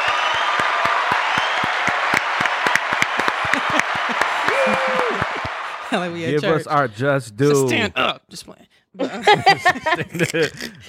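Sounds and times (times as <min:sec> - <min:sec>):
small group clapping in a round of applause: 0:00.0 - 0:06.6
people cheering and calling out: 0:00.0 - 0:06.8
laughter: 0:03.2 - 0:06.6, 0:09.0 - 0:10.8
speech: 0:05.9 - 0:10.8.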